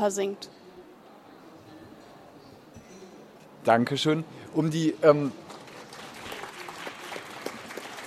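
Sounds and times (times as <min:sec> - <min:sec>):
speech: 0:00.0 - 0:00.6, 0:03.6 - 0:05.4
audience applause: 0:05.4 - 0:08.0.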